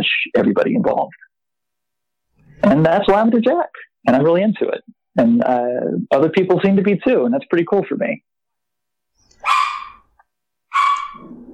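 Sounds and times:
speech: 0:00.2 - 0:01.2, 0:02.6 - 0:08.3
dog barking: 0:09.3 - 0:10.1, 0:10.7 - 0:11.5.

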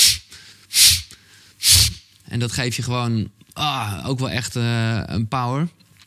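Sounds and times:
forceful breaths blown out in breathwork breathing technique demonstration: 0:00.0 - 0:02.0
speech: 0:02.4 - 0:05.8.

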